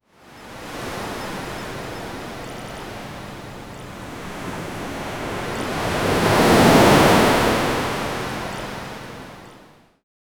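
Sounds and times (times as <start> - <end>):
massive wave crashing on a beach: 3.7 - 9.0.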